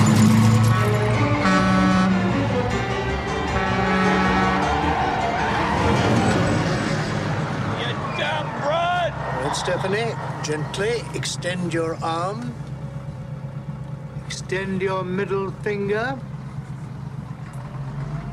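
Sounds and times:
car tires screeching while braking hard and reversing: 0.0 - 18.3
steady car engine roar: 0.0 - 18.3
speech: 9.9 - 12.7, 14.5 - 16.3.

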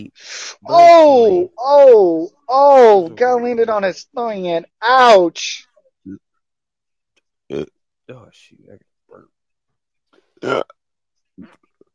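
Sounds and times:
speech: 0.0 - 6.2, 7.5 - 9.3, 10.4 - 10.8, 11.4 - 11.6
person burping: 7.5 - 7.7, 10.4 - 10.8.

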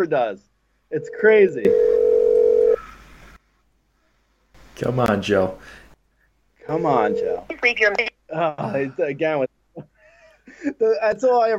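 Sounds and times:
speech: 0.0 - 2.0, 4.8 - 5.8, 6.7 - 9.9, 10.5 - 11.5
electronic ringback tone from an outgoing phone call: 1.1 - 2.8, 6.8 - 7.4.

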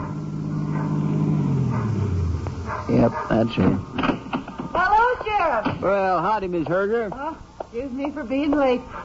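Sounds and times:
car engine humming as the vehicle rounds a bend and slows: 0.0 - 5.6
speech: 2.9 - 4.1, 5.5 - 9.0.

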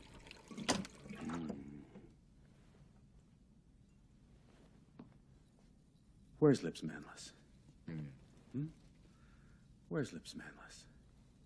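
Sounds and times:
water being poured: 0.0 - 1.7
speech: 6.4 - 7.4, 10.0 - 10.9.

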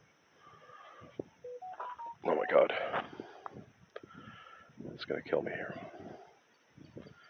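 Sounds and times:
soft hum: 0.0 - 7.2
phone messaging app notification beeps: 1.4 - 2.6
speech: 2.5 - 3.1, 5.1 - 6.1.

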